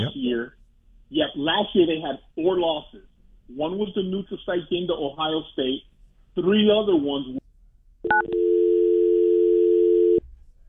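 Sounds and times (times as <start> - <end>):
speech: 0.0 - 7.4, 8.0 - 8.4
faint low noise: 0.0 - 10.6
telephone dial tone after a dropped call: 8.1 - 10.2.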